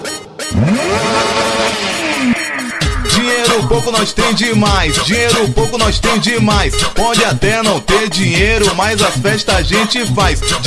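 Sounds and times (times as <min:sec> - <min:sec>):
car engine revving hard: 0:00.5 - 0:05.8
speech: 0:00.6 - 0:01.1, 0:03.6 - 0:10.6.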